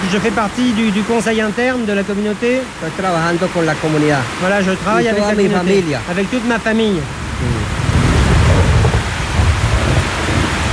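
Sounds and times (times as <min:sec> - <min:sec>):
dense rain hiss during a night thunderstorm: 0:00.0 - 0:10.7
speech: 0:00.1 - 0:07.6
deep rolling thunder during a night thunderstorm: 0:07.2 - 0:10.7.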